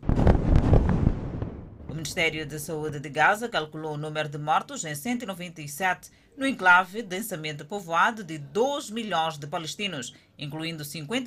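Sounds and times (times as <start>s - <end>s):
explosions booming across a city: 0.0s - 2.5s
speech: 2.0s - 11.2s.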